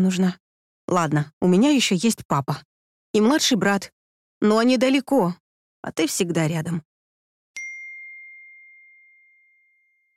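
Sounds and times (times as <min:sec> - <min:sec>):
speech: 0:00.0 - 0:06.9
phone message notification ding: 0:07.6 - 0:10.1.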